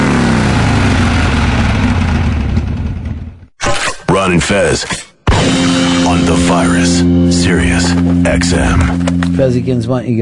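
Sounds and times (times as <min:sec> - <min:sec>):
loud motorcycle engine revving: 0:00.0 - 0:03.5, 0:05.3 - 0:09.6
speech: 0:04.2 - 0:10.2.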